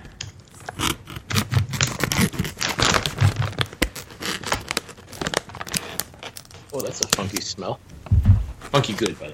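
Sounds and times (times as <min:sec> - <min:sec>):
scissors cutting open a plastic snack bag: 0:00.5 - 0:07.4
plastic snack bag crackling and rustling: 0:01.4 - 0:07.5
speech: 0:06.8 - 0:08.0, 0:08.7 - 0:09.3.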